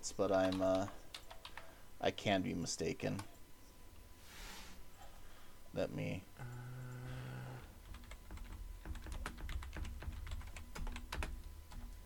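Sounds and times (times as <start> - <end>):
speech: 0.0 - 1.0, 2.0 - 3.4, 5.7 - 6.6
typing on a computer keyboard: 0.3 - 1.7, 7.8 - 12.0.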